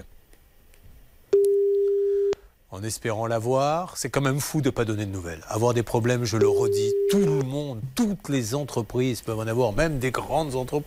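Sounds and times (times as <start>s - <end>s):
telephone tone while calling a mobile: 1.4s - 2.4s, 6.4s - 7.4s
speech: 2.8s - 10.8s.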